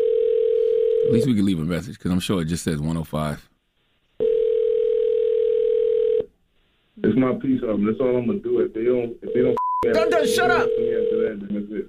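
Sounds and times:
phone ringing tone on a call: 0:00.0 - 0:01.3, 0:04.2 - 0:06.3, 0:09.3 - 0:11.4
speech: 0:01.1 - 0:03.5, 0:07.0 - 0:11.8.

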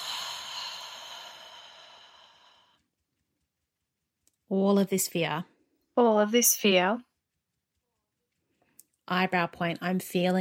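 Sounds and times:
deep breath in and out during a guided tapping relaxation exercise: 0:00.0 - 0:02.9
speech: 0:04.5 - 0:07.1, 0:09.1 - 0:10.3.

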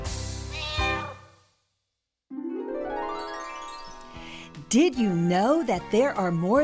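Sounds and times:
cat meowing: 0:00.5 - 0:01.3
speech: 0:04.7 - 0:06.6.

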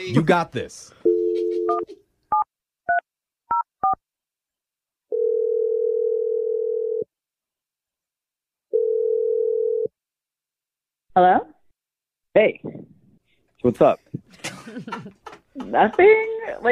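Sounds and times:
speech: 0:00.0 - 0:01.0, 0:11.2 - 0:11.5, 0:12.4 - 0:12.9, 0:13.6 - 0:16.7
long even telephone ringback tones: 0:01.0 - 0:02.0, 0:05.1 - 0:07.0, 0:08.7 - 0:09.9
steady telephone dial tone: 0:01.1 - 0:02.4, 0:05.1 - 0:07.0, 0:08.7 - 0:09.9
laughter: 0:14.1 - 0:16.7.

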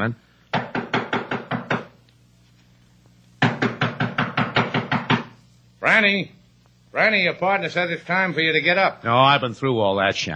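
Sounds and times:
speech: 0:00.0 - 0:00.6, 0:06.0 - 0:10.3
knocking on a door: 0:00.5 - 0:02.0, 0:03.4 - 0:05.4.

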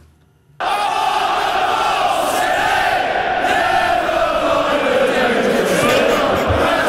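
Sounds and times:
large stadium crowd of football supporters singing a chant: 0:00.6 - 0:06.8
laughter: 0:03.9 - 0:06.8.

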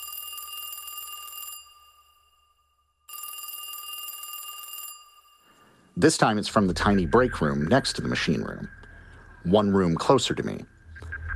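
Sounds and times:
telephone ringing in classic bell-like bursts: 0:00.0 - 0:02.4, 0:03.1 - 0:05.6
speech: 0:06.0 - 0:08.8, 0:09.4 - 0:10.8.

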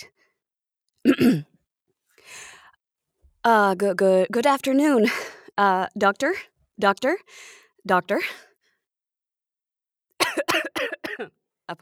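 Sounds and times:
speech: 0:01.0 - 0:01.5, 0:03.4 - 0:08.5, 0:10.4 - 0:11.7
sharp harsh coughs: 0:01.0 - 0:01.6, 0:10.2 - 0:11.4.

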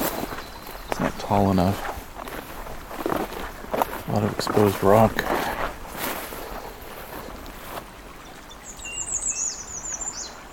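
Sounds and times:
American redstart songs: 0:00.0 - 0:05.2, 0:08.0 - 0:10.5
steady wash of wind or water noise: 0:00.0 - 0:10.5
speech: 0:01.2 - 0:01.9, 0:04.2 - 0:05.4.

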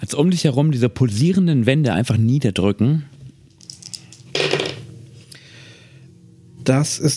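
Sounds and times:
speech: 0:00.0 - 0:03.2, 0:06.6 - 0:07.1
dice tumbling across a hard surface: 0:03.5 - 0:04.9.

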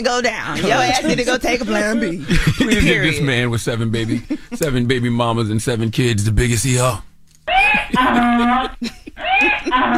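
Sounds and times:
speech: 0:00.0 - 0:07.1, 0:07.9 - 0:09.9
laughter: 0:00.5 - 0:03.3, 0:03.9 - 0:04.7, 0:07.6 - 0:09.9
donkey braying: 0:07.5 - 0:09.9.

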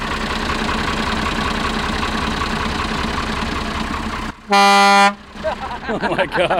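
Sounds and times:
Perkins diesel engine of an International truck idling: 0:00.0 - 0:06.5
long blaring horn blast: 0:04.5 - 0:05.2
speech: 0:04.5 - 0:06.5
laughter: 0:05.4 - 0:06.5.

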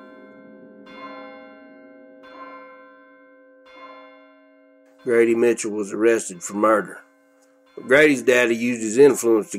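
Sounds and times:
church bell tolling: 0:00.0 - 0:09.5
speech: 0:05.0 - 0:07.1, 0:07.8 - 0:09.5.

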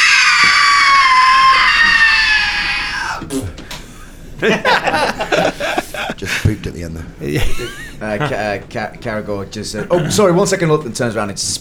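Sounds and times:
person acting a frightened character screaming high-pitched: 0:00.0 - 0:03.5
laughter: 0:00.0 - 0:11.5
breathy voice sounds: 0:02.7 - 0:10.4
talking: 0:03.0 - 0:11.5
speech: 0:04.4 - 0:05.2, 0:06.6 - 0:11.5.

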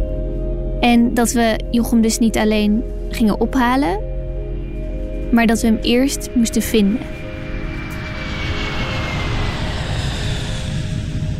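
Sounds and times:
speech: 0:00.8 - 0:04.1, 0:05.3 - 0:07.2
airplane engine drone heard from inside the cabin in flight: 0:04.3 - 0:11.3.

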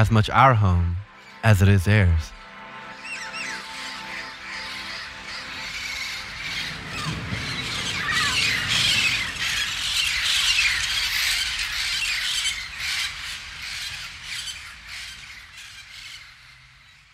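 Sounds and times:
speech: 0:00.0 - 0:02.4
birds squawking: 0:02.7 - 0:17.1.

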